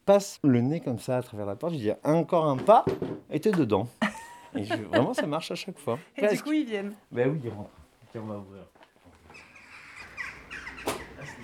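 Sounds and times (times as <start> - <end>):
speech: 0.1 - 8.8
laughter: 4.0 - 5.4
crows cawing from a church bell tower: 9.3 - 11.4.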